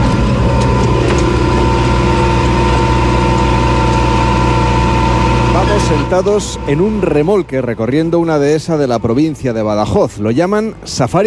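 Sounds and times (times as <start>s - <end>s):
faint rattles: 0.0s - 7.6s
tractor engine running: 0.0s - 11.2s
speech: 6.1s - 11.2s.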